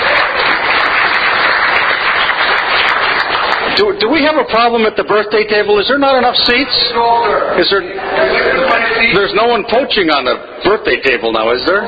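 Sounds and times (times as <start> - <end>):
sizable crowd applauding: 0.0 - 4.0
speech: 3.8 - 11.8.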